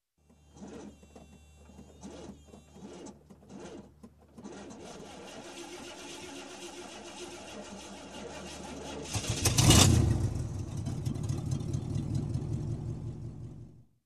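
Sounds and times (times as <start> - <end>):
old engine starting up: 1.9 - 13.8.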